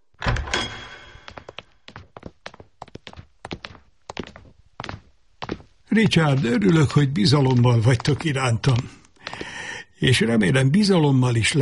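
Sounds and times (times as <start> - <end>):
heavy door thudding open: 0.2 - 1.3
footsteps of two young people crossing a hard floor: 1.1 - 9.6
speech: 5.9 - 9.0, 10.0 - 11.6.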